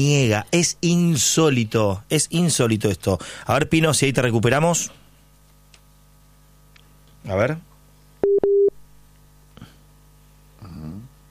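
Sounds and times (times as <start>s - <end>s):
speech: 0.0s - 5.0s, 7.2s - 7.7s
telephone busy tone beeps as mobile phone call drops: 8.2s - 8.7s.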